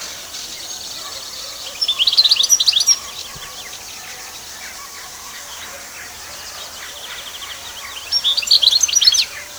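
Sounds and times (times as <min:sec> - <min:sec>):
canary singing rapid high trilled phrases: 0:00.0 - 0:03.7, 0:06.5 - 0:09.5
faint twittering: 0:00.0 - 0:09.5.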